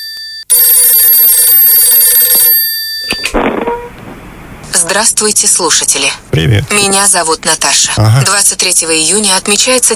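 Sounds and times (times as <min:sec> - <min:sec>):
telephone ringing: 0:00.0 - 0:03.8
speech: 0:04.7 - 0:09.9.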